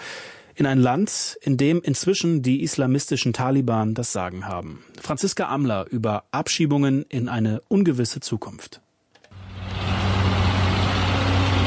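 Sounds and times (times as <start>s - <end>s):
speech: 0.6s - 8.8s
overloaded heavy truck engines idling at border crossing: 9.4s - 11.6s.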